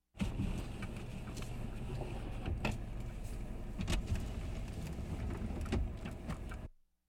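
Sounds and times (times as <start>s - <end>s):
car window wound open manually: 0.2s - 6.7s.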